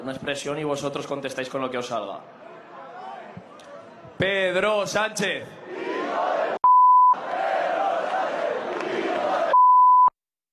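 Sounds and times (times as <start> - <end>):
speech: 0.0 - 2.4, 4.2 - 5.9
loud crowd chanting and shouting: 2.2 - 6.6, 7.2 - 9.6
steady high censorship bleep: 6.6 - 7.2, 9.5 - 10.1.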